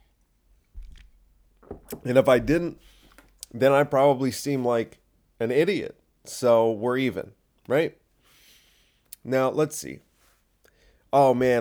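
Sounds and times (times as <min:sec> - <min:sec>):
sipping a drink: 0:00.8 - 0:03.5
speech: 0:01.9 - 0:08.0, 0:09.2 - 0:10.1, 0:11.1 - 0:11.6.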